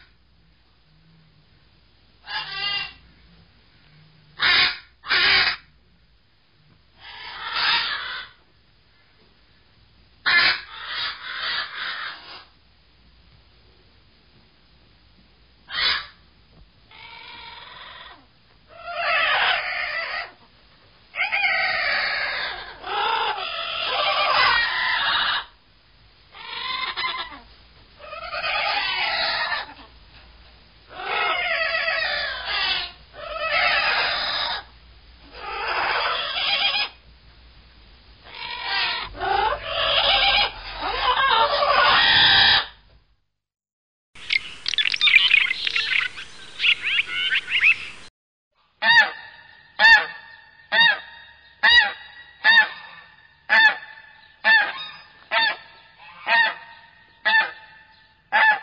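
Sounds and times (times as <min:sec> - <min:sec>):
birds: 0:02.2 - 0:03.1, 0:07.0 - 0:08.4, 0:10.2 - 0:12.5, 0:15.7 - 0:16.2, 0:16.9 - 0:20.4, 0:21.2 - 0:25.5, 0:26.3 - 0:29.9, 0:30.9 - 0:37.0, 0:38.2 - 0:42.8, 0:44.2 - 0:48.1, 0:48.8 - 0:58.6.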